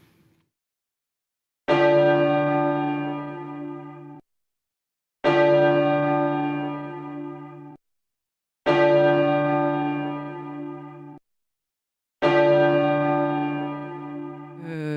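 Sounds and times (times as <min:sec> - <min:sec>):
church bell tolling: 0:01.7 - 0:04.2, 0:05.2 - 0:07.8, 0:08.7 - 0:11.2, 0:12.2 - 0:14.6.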